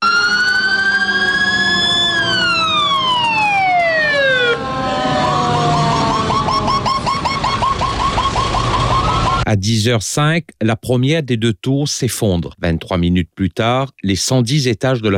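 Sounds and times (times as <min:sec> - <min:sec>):
dense roar of city traffic: 0:00.0 - 0:09.5
emergency vehicle siren wailing: 0:00.0 - 0:09.5
speech: 0:09.7 - 0:15.1.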